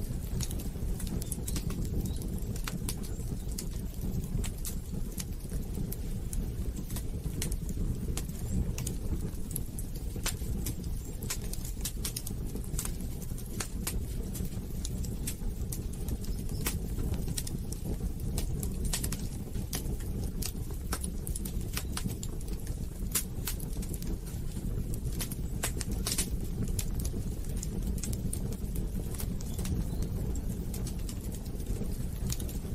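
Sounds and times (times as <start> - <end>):
fireplace fire roaring: 0.0 - 32.7.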